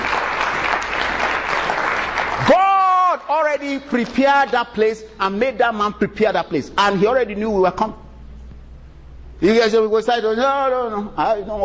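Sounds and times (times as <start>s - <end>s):
church congregation applauding during a service: 0.0s - 4.6s
speech: 3.6s - 8.0s, 9.4s - 11.6s.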